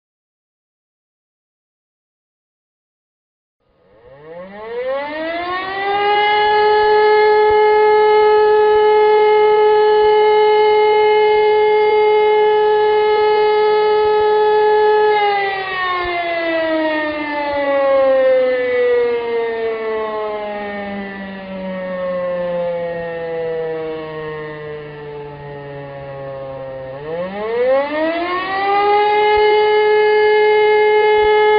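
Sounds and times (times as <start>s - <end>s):
siren signals: 3.7s - 31.5s.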